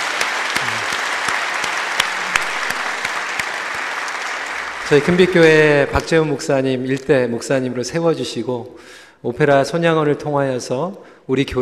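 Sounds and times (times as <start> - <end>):
audience applauding: 0.0 - 6.2
speech: 4.9 - 11.6.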